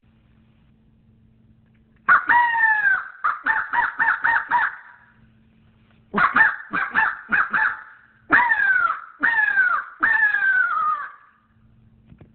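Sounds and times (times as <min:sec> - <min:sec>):
crow cawing: 0:02.1 - 0:05.1, 0:06.2 - 0:11.5.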